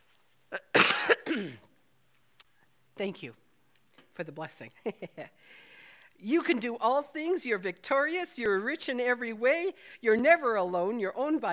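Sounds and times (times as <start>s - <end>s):
person coughing: 0.6s - 1.7s
speech: 3.0s - 3.4s, 4.2s - 11.5s.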